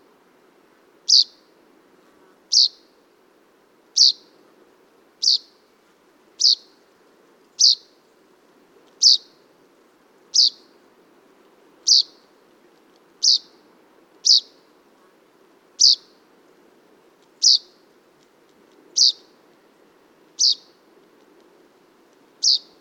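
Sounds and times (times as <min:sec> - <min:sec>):
common chaffinch Fringilla coelebs calls: 0:01.1 - 0:01.3, 0:04.0 - 0:04.2, 0:05.2 - 0:05.5, 0:06.4 - 0:06.7, 0:07.6 - 0:07.8, 0:09.0 - 0:09.2, 0:10.4 - 0:10.6, 0:11.9 - 0:12.2, 0:13.2 - 0:13.5, 0:14.2 - 0:14.6, 0:15.8 - 0:16.1, 0:17.4 - 0:17.7, 0:19.0 - 0:19.2, 0:20.4 - 0:20.7, 0:22.4 - 0:22.7.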